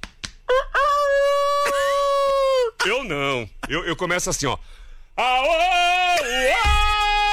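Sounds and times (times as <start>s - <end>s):
rooster crowing: 0.5s - 2.7s
speech: 3.4s - 6.7s.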